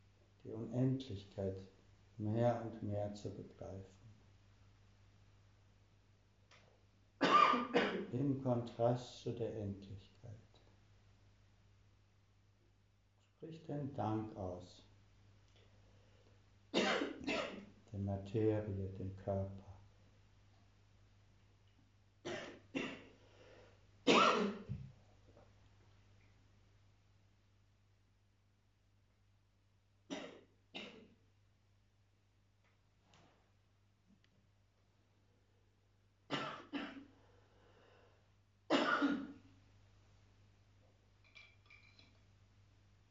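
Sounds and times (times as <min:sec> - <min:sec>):
low steady hum: 0:00.0 - 0:43.0
speech: 0:00.4 - 0:04.1, 0:07.5 - 0:10.4, 0:13.4 - 0:14.9, 0:17.9 - 0:19.7
person coughing: 0:07.2 - 0:08.1, 0:16.8 - 0:17.7, 0:24.1 - 0:24.8, 0:36.3 - 0:37.1, 0:38.7 - 0:39.4
throat clearing: 0:07.2 - 0:08.1, 0:16.8 - 0:17.7, 0:38.7 - 0:39.4.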